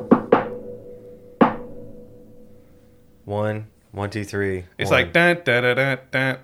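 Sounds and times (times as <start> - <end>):
sharp knocks in a pattern: 0.0 - 1.9
speech: 3.3 - 6.4.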